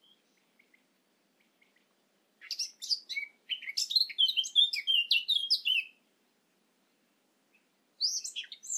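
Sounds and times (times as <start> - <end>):
Eurasian blackcap warbling song: 2.4 - 6.0, 8.0 - 8.7.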